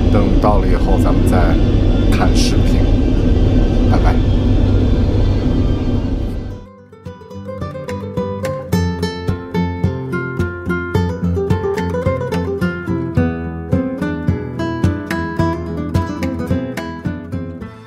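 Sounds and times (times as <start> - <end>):
airplane cabin roar during a flight over the Pacific Ocean toward Auckland: 0.0 - 6.7
speech: 0.1 - 2.9
music with plucked notes and light percussion: 6.6 - 17.8.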